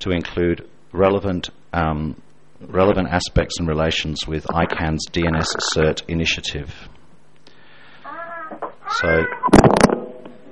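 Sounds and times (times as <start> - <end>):
speech: 0.0 - 6.9, 8.5 - 9.5
cat giving a drawn-out wavering meow: 8.1 - 9.6.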